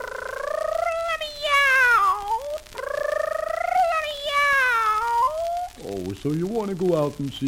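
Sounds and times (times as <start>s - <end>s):
cat meowing: 0.0s - 5.8s
speech: 6.2s - 7.4s.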